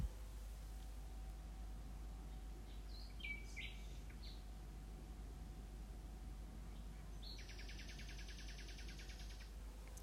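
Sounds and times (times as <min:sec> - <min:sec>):
constant low electrical hum: 0:00.0 - 0:10.0
nightingale singing: 0:02.2 - 0:04.5, 0:06.7 - 0:09.6.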